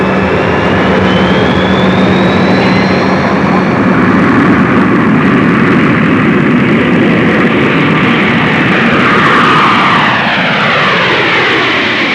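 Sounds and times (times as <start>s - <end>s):
aircraft taking off: 0.0s - 12.1s.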